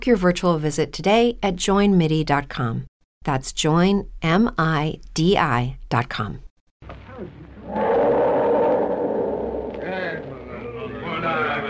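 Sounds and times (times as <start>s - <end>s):
speech: 0.0s - 7.8s
frightened elephant trumpeting: 7.6s - 10.3s.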